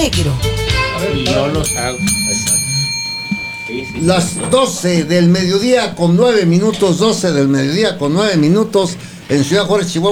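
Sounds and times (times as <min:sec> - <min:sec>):
speech: 0:00.0 - 0:02.7, 0:03.7 - 0:10.1
bright bell tone ringing: 0:00.5 - 0:08.2.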